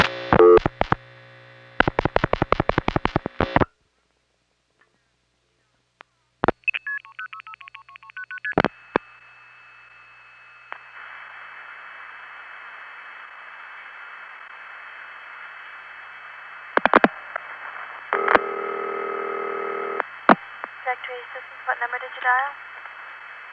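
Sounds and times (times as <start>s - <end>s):
dial-pulse clicks from crossbar tandem dialing into step-by-step exchange: 0.0s - 1.0s, 1.8s - 3.7s, 6.4s - 9.4s, 16.7s - 17.5s, 18.1s - 20.8s
steady telephone tone: 0.0s - 1.0s, 6.6s - 16.7s, 17.3s - 20.1s.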